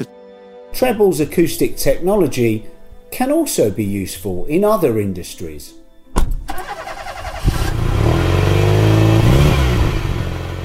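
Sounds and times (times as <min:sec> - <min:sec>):
speech: 0:00.8 - 0:05.8
car engine starting up and revving through acceleration: 0:06.5 - 0:10.6.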